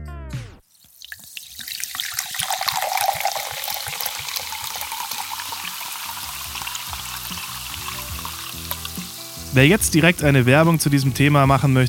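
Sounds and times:
liquid pouring into a glass: 0.7s - 9.6s
speech: 9.6s - 11.8s.

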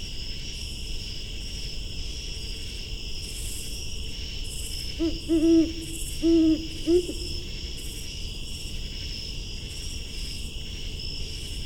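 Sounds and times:
insects trilling: 2.3s - 11.6s
speech: 5.0s - 7.3s
great horned owl hooting from forest in Laurel Maryland: 5.0s - 7.6s.

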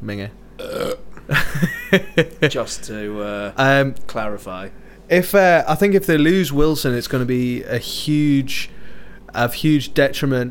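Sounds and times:
speech: 0.0s - 10.4s
burp into the microphone: 0.6s - 1.3s
laughter: 1.3s - 2.8s.

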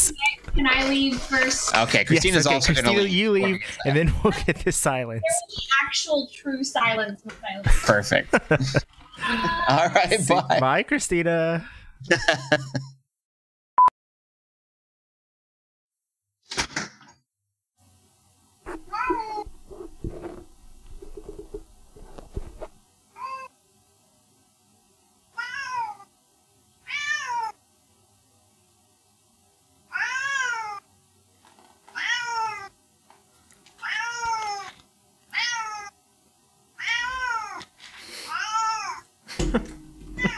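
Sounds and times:
speech: 0.1s - 12.9s
laughter: 0.9s - 5.0s, 7.7s - 11.2s, 12.0s - 12.9s, 39.3s - 40.3s
rustling: 18.7s - 22.8s
cat meowing: 18.8s - 19.5s, 25.4s - 26.0s, 26.8s - 27.6s, 29.9s - 30.8s, 32.0s - 32.7s, 33.8s - 34.7s, 35.3s - 35.9s, 36.8s - 37.7s, 38.3s - 39.0s
knocks: 39.4s - 40.3s.

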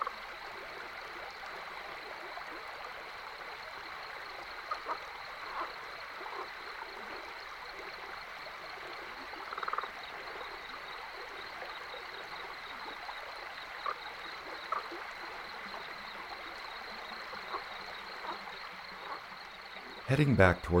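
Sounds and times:
flowing stream: 0.0s - 20.7s
Rio Grande leopard frog cackling calls: 4.6s - 7.2s, 9.1s - 13.0s, 13.7s - 20.7s
speech: 20.1s - 20.7s.

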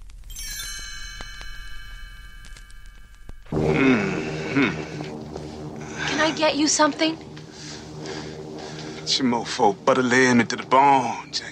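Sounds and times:
bright chime ringing as page-turn cue: 0.3s - 3.6s
person grunting and groaning: 3.6s - 5.1s
speech: 6.3s - 7.3s, 9.1s - 11.4s.

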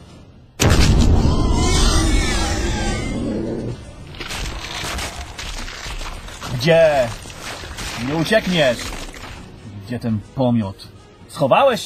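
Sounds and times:
thrown fire bomb exploding: 0.6s - 2.6s
speech: 6.6s - 7.2s, 8.0s - 9.0s, 9.9s - 11.8s.

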